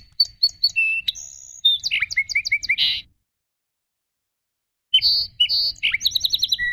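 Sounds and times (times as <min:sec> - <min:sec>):
song sparrow singing: 0:00.0 - 0:03.2, 0:04.9 - 0:06.7.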